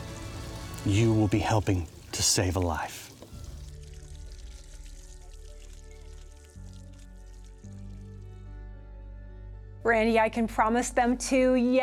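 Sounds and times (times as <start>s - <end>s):
water gushing from a newly drilled well: 0.0s - 8.1s
speech: 0.8s - 3.1s, 9.9s - 11.8s.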